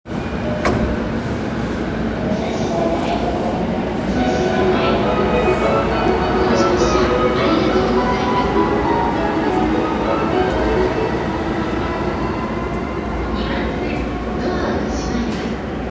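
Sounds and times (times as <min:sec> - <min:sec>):
Chuo Line rapid train sounds at Musashisakai: 0:00.1 - 0:15.8.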